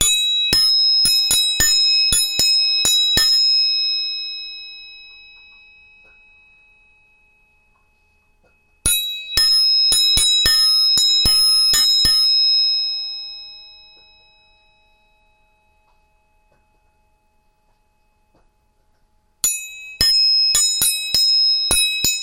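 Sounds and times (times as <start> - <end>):
tuning fork struck and ringing: 0.0 - 22.2.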